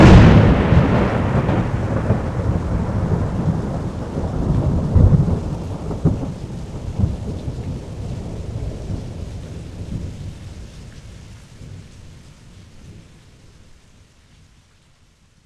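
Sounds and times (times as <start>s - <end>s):
thunder strike: 0.0s - 7.3s.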